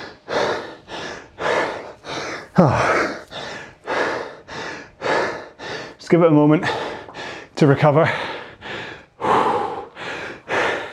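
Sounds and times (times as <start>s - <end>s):
heavy labored breathing after rowing exertion: 0.0s - 10.9s
speech: 2.6s - 2.9s, 6.1s - 6.8s, 7.6s - 8.3s.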